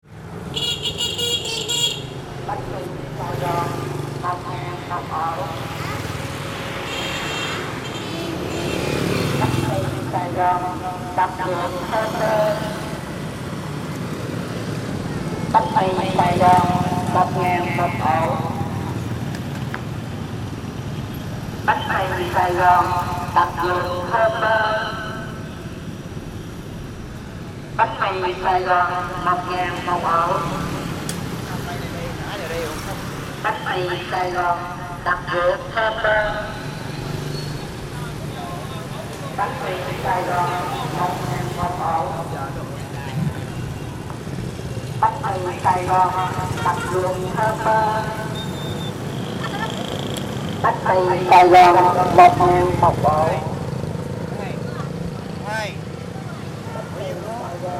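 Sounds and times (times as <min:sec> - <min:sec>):
street ambience in Hoi An: 0:00.0 - 0:57.7.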